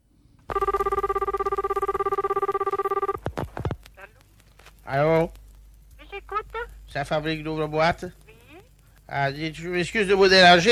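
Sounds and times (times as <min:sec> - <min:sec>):
telephone ringing for a prank call: 0:00.5 - 0:03.2
speech: 0:07.0 - 0:08.2, 0:09.1 - 0:10.7.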